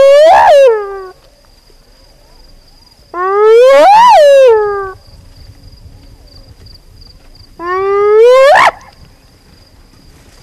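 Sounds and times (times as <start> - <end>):
spotted hyena whooping: 0.0 - 1.2, 3.2 - 5.0, 7.6 - 8.9.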